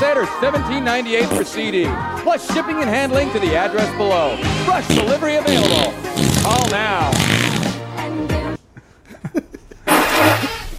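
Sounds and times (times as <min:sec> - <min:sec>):
speech: 0:00.0 - 0:07.5
raspy fart sound effects from a soundboard: 0:01.3 - 0:01.5, 0:04.8 - 0:07.8, 0:09.9 - 0:10.7
laughter: 0:08.8 - 0:09.9.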